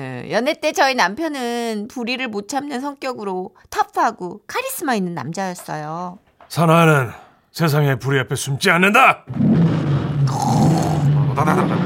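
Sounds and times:
speech: 0:00.3 - 0:09.7, 0:11.4 - 0:11.8
voice imitating a motorcycle engine revving: 0:09.3 - 0:11.8
laughter: 0:11.2 - 0:11.8.

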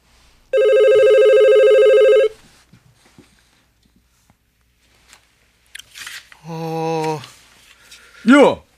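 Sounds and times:
telephone ringing: 0:00.5 - 0:02.4
speech: 0:08.3 - 0:08.6.

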